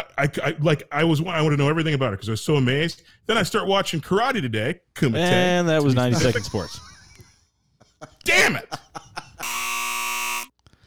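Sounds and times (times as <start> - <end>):
speech: 0.2 - 6.9, 8.2 - 8.8
laughter: 5.2 - 9.7
end-of-segment buzzer tone: 9.4 - 10.6.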